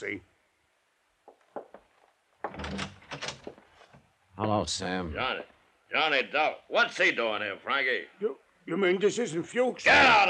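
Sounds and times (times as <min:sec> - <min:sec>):
speech: 0:00.0 - 0:00.3, 0:04.4 - 0:10.2
soft footsteps: 0:01.2 - 0:02.7, 0:03.4 - 0:04.1
door opening with a clunk and scrape: 0:01.3 - 0:04.1.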